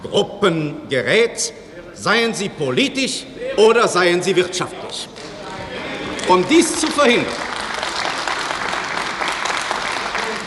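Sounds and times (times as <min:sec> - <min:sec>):
speech: 0:00.0 - 0:05.3, 0:06.3 - 0:07.4
applause in the West German Bundestag: 0:06.1 - 0:10.4.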